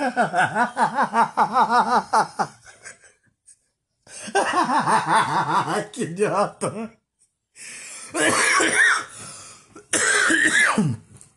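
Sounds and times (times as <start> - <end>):
speech: 0.0 - 2.3, 4.8 - 7.0, 10.8 - 11.0
laughter: 0.0 - 3.2, 4.2 - 5.8
person coughing in harsh wheezy bursts: 8.1 - 9.1, 9.8 - 11.1
raspy throat-clearing: 8.2 - 9.1, 9.8 - 11.1.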